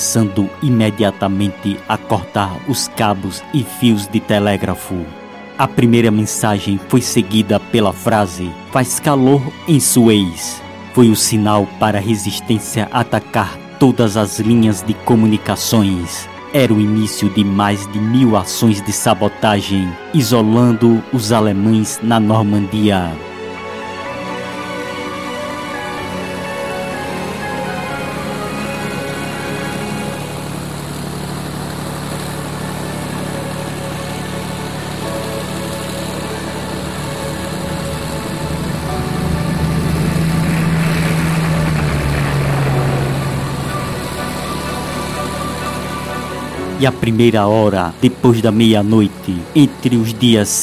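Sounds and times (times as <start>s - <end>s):
hundreds of aircraft engines roaring overhead over villages in southern and central England: 0.0s - 50.6s
speech: 0.1s - 23.3s, 46.8s - 50.6s
deep rising hum: 23.0s - 49.9s.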